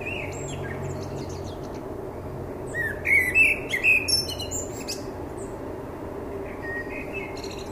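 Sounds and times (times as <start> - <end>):
common blackbird Turdus merula singing: 0.0 - 1.9, 2.6 - 5.6, 6.4 - 7.7.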